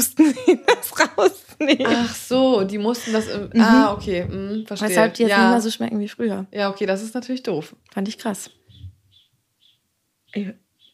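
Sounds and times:
laughter: 0.0 - 2.3
speech: 0.0 - 8.6, 10.3 - 10.6
low rumble: 3.0 - 4.7
loud bird calling at the window: 8.1 - 10.9.

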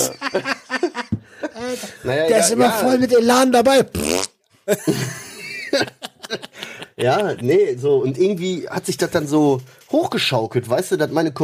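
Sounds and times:
laughter: 0.0 - 2.0, 4.7 - 7.7
speech: 0.3 - 4.1, 4.7 - 11.4
fart: 3.9 - 4.4
person snickering: 4.7 - 7.4.

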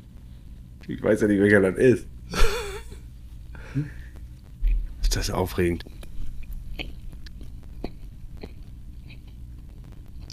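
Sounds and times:
low hum: 0.0 - 10.3
speech: 0.8 - 2.4, 3.8 - 4.0, 5.2 - 6.0
moist chewing of juicy bread flavoured with rum, lemon and candied orange peel: 5.8 - 10.3
soft irregular mouth clicks and smacks: 5.8 - 10.3.

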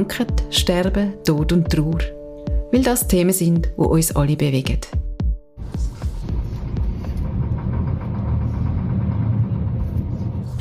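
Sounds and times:
speech: 0.0 - 5.0
bus engine droning on a trip in the canton of Zurich: 5.6 - 10.5
faint bus rattles and vibrations: 5.6 - 10.5.

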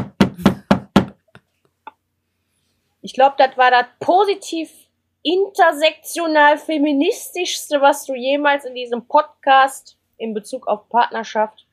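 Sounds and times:
sharp knocks: 0.0 - 1.4
speech: 3.1 - 11.6.

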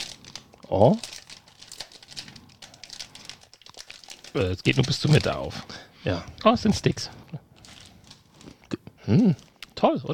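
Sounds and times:
plastic snack bag crinkling as it is opened: 0.0 - 5.6, 7.5 - 8.6
speech: 0.7 - 1.1, 4.4 - 7.4, 9.1 - 10.1.

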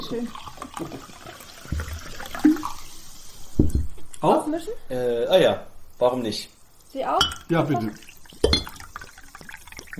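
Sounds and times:
water and apple juice pouring and splashing into a glass: 0.0 - 3.1, 7.2 - 9.9
soft fizzing of a spritzer: 0.0 - 3.6, 6.3 - 9.9
speech: 0.1 - 1.2, 4.2 - 8.1
glass clink: 7.2 - 7.6, 8.4 - 9.5.

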